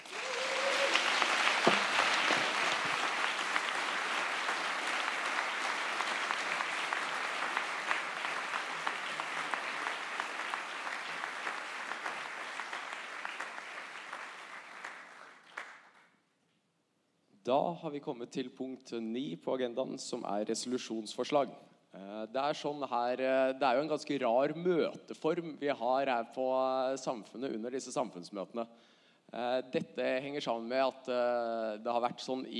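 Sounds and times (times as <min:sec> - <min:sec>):
audience applause: 0:00.0 - 0:15.9
speech: 0:17.5 - 0:21.7, 0:22.3 - 0:32.5.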